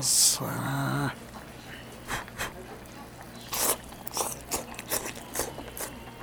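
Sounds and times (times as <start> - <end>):
low hum: 0.0 - 6.2
person biting and chewing a large piece of hot-pot chicken dipped in ponzu: 2.2 - 6.2.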